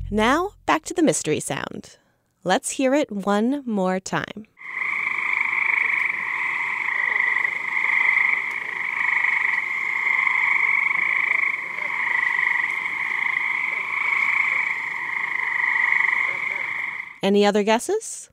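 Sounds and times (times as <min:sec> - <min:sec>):
speech: 0:00.1 - 0:04.5, 0:17.2 - 0:18.3
chorus of cricket frogs calling to females in New Jersey: 0:04.6 - 0:17.2.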